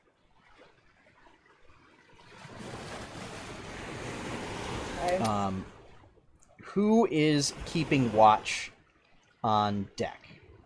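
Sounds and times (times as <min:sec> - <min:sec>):
rough sea waves with turbulent surf surges: 0:02.1 - 0:08.8
speech: 0:05.1 - 0:05.7, 0:06.8 - 0:08.7, 0:09.4 - 0:10.2.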